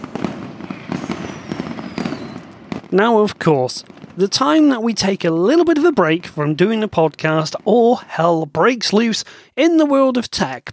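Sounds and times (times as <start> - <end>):
firework whistling streak overhead: 0.0 - 4.2
firework bangs and crackles: 0.0 - 9.1
speech: 2.9 - 10.7.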